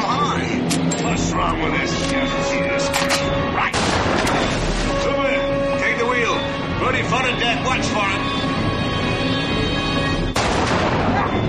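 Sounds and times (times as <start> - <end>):
steady tonal drone: 0.0 - 10.4
rifle shot fired into water: 3.8 - 4.5, 10.4 - 11.3.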